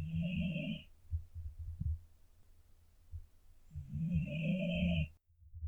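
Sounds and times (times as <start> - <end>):
sleeping dog snoring: 0.0 - 2.0, 3.7 - 5.2.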